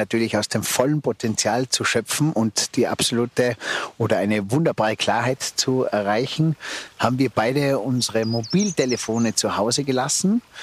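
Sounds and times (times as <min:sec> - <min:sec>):
rushing stream: 0:00.0 - 0:10.6
speech: 0:00.0 - 0:10.6
birds singing in a forest: 0:06.3 - 0:10.6.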